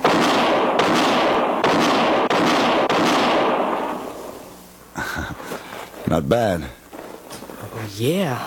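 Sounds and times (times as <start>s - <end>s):
handgun shots in a quick-draw shooting contest: 0.0s - 4.1s
speech: 6.2s - 6.8s, 7.8s - 8.4s.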